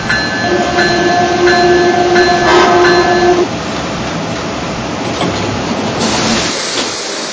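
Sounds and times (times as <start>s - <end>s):
passenger train rolling into a station, rumbling and clattering: 0.0s - 7.3s
passenger train horn or squeal: 0.3s - 3.5s.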